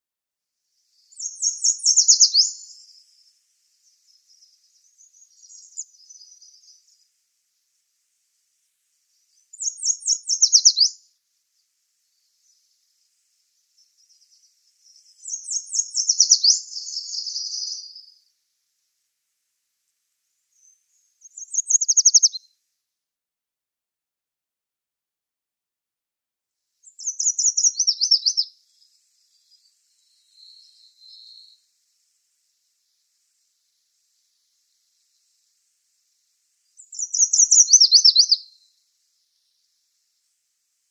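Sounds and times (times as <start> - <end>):
Yellow Warbler singing: 0.8 - 7.2, 9.1 - 18.3, 20.5 - 22.5, 26.8 - 40.4.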